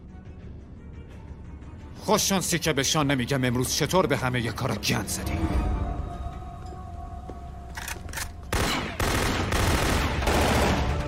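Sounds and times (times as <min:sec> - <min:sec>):
speech: 0:02.1 - 0:05.7
gunfire bursts on a ship's deck: 0:08.5 - 0:11.0.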